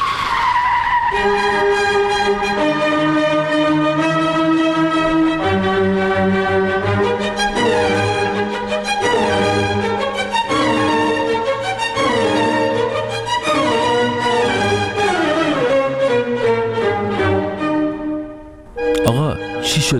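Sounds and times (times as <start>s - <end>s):
car tires skidding under hard braking: 0.0s - 19.9s.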